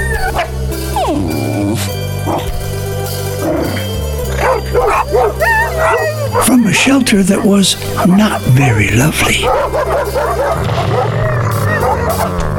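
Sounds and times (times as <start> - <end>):
puppy barking and yipping: 0.0 - 1.1, 2.2 - 2.6, 3.6 - 8.5, 9.4 - 12.5
music: 0.0 - 12.5
speech: 6.8 - 11.4, 12.0 - 12.5.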